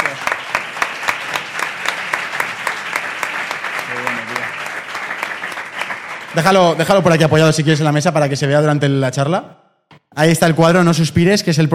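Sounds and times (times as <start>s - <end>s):
audience applauding: 0.0s - 7.6s
speech: 6.4s - 9.6s, 10.2s - 11.7s.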